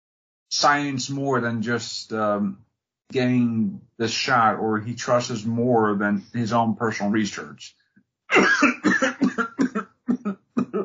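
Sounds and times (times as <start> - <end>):
speech: 0.5 - 8.8
person coughing: 8.3 - 10.8.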